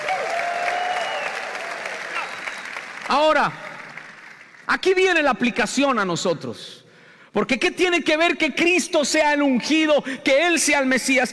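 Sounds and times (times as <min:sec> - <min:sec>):
audience applauding loudly: 0:00.0 - 0:04.9
speech: 0:03.1 - 0:03.6, 0:04.7 - 0:11.3.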